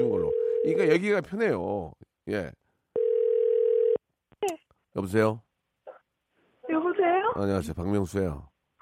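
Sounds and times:
telephone ringback tone as a radio DJ dials a listener: 0.0 - 0.9, 3.0 - 4.0
speech: 0.6 - 2.6, 5.0 - 5.4, 7.4 - 8.5.

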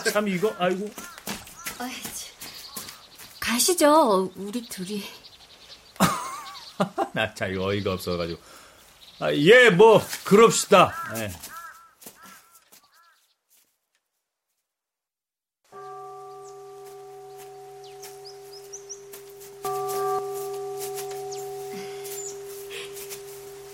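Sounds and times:
crow-like caws: 0.0 - 2.0, 2.7 - 3.1, 10.8 - 13.3
birds chirping: 0.0 - 13.4, 15.7 - 23.7
speech: 0.1 - 1.2, 1.8 - 2.4, 3.5 - 5.2, 6.8 - 8.6, 9.2 - 11.5
laughter: 6.0 - 7.3
large bells ringing with deep humming tones: 15.7 - 23.7.

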